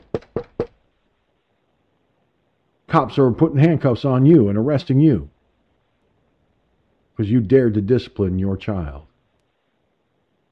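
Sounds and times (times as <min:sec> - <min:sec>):
heavy pounding knocks on a door: 0:00.0 - 0:00.8
speech: 0:02.9 - 0:05.3, 0:07.2 - 0:09.1.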